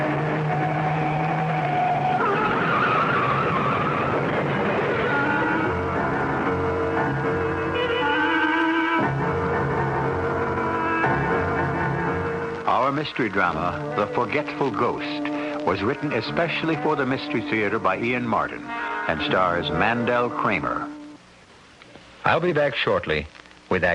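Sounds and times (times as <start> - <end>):
car tires squealing and screeching while skidding off road: 0.0 - 12.6
car engine roaring while swerving off road: 0.0 - 21.0
speech: 12.9 - 20.9, 22.3 - 23.9.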